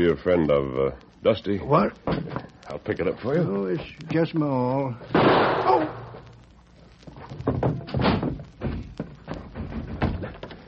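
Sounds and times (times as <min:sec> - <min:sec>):
speech: 0:00.0 - 0:06.1
heavy thumping against a bolted wooden door: 0:07.5 - 0:10.5.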